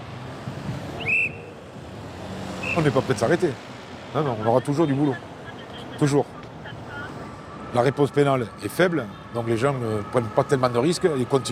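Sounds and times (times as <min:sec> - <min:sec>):
short high whistle blast: 0:01.0 - 0:01.5, 0:02.6 - 0:02.9
speech: 0:02.8 - 0:05.3, 0:06.0 - 0:06.4, 0:07.7 - 0:11.5.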